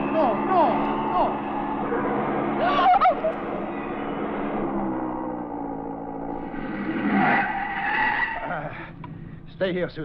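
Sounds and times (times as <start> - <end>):
speeding Porsche engine roaring: 0.0 - 10.0
car tires screeching in a loud skid going off the road: 6.3 - 8.8
speech: 9.6 - 10.0.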